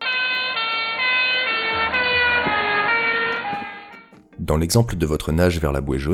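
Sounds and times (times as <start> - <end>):
car siren-like tonal horn passing by with Doppler pitch shift: 0.0 - 4.3
speech: 4.5 - 6.1.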